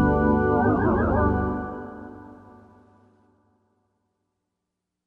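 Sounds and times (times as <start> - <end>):
Korg M1Rex bell synth: 0.2 - 2.4.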